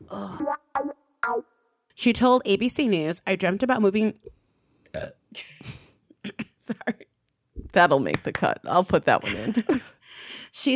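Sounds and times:
speech: 0.1s - 0.6s, 2.0s - 4.2s, 7.8s - 9.9s, 10.6s - 10.7s
short gurgly burp: 4.9s - 5.2s.

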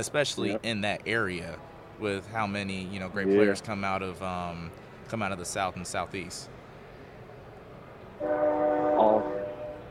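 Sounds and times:
speech: 0.0s - 6.6s, 8.2s - 8.5s
passing train horn blast: 8.2s - 9.8s.

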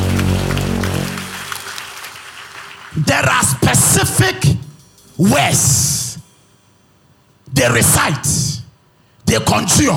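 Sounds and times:
sustained droning musical chord: 0.0s - 1.7s, 4.3s - 7.4s
crowd clapping hands in a reverberant room: 0.0s - 4.2s
speech: 3.0s - 4.6s, 5.2s - 6.0s, 7.6s - 8.5s, 9.3s - 9.9s.

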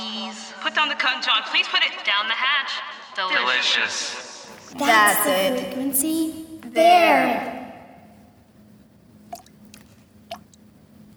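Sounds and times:
speech: 0.8s - 7.6s
low hum: 4.5s - 11.1s
water spider stepping on water: 8.0s - 11.1s.

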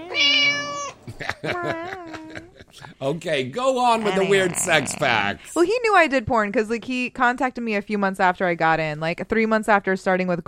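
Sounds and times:
kitten meowing: 0.0s - 1.0s, 4.0s - 5.1s
laughter: 1.0s - 5.3s
speech: 1.4s - 2.2s, 2.8s - 10.4s.

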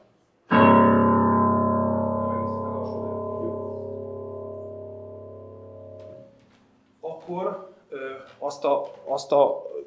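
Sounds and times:
lowest note played on a piano: 0.5s - 6.8s
speech: 7.3s - 9.7s.

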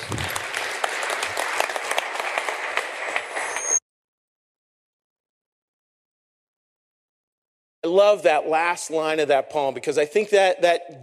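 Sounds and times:
audience applause: 0.0s - 3.7s
speech: 7.9s - 11.0s.

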